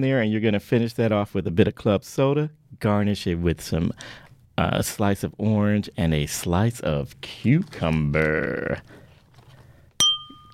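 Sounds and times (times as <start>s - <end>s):
speech: 0.0s - 9.0s
glasses clinking in a toast with cocktails: 10.0s - 10.5s.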